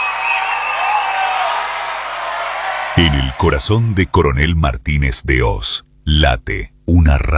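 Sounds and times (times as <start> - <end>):
whoops and whistles: 0.0 - 2.6
crowd clapping and cheering: 0.0 - 4.0
speech: 3.0 - 7.3.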